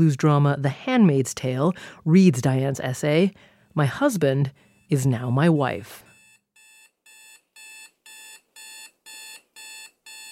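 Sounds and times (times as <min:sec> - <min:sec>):
speech: 0:00.0 - 0:06.1
electronic alarm clock beeping: 0:03.9 - 0:10.3.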